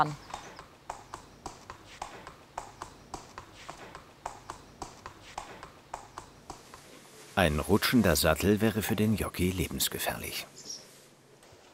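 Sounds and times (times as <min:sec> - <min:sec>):
speech: 0:00.0 - 0:00.2, 0:07.4 - 0:10.6
racehorse hooves walking: 0:00.0 - 0:08.8.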